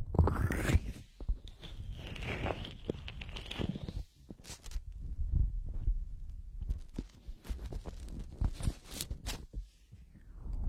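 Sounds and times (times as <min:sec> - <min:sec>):
warm hands rubbing and massaging the ears: 0:00.2 - 0:10.0.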